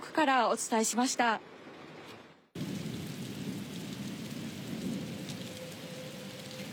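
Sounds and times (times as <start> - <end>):
speech: 0.2 - 1.6
heavy rain pouring down: 2.6 - 6.7.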